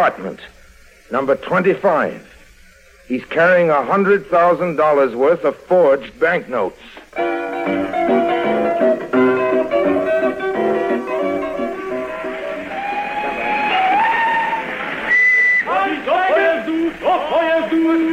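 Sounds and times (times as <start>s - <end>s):
speech: 0.0s - 2.3s, 3.1s - 8.2s
station noise: 0.0s - 18.1s
steam train whistle at station: 11.7s - 18.1s.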